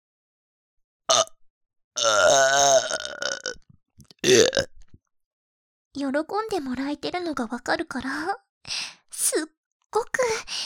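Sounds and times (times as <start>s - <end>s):
long loud drawn-out belch with a wavering tone: 1.1s - 1.4s, 2.0s - 4.8s
person burping: 1.1s - 1.4s, 2.0s - 3.6s, 4.2s - 4.8s
speech: 6.0s - 10.6s.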